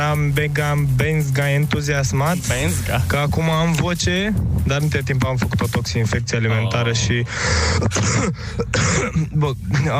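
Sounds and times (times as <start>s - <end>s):
speech: 0.1s - 9.9s
person coughing: 7.6s - 9.4s
person clearing throat: 7.7s - 9.4s.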